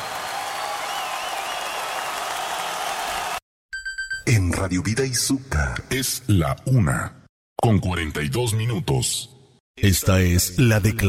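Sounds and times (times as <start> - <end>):
audience applauding loudly: 0.0 - 3.4
speech: 4.3 - 11.0.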